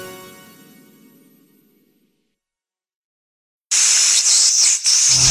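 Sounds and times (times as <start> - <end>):
crackling radio static hiss with warbling sweeping tones: 3.7 - 5.2.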